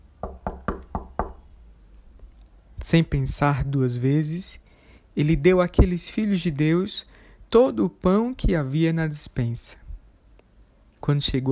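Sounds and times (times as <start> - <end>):
firm knocking on a door: 0.2 - 1.5
speech: 2.8 - 4.6, 5.2 - 9.8, 11.1 - 11.5.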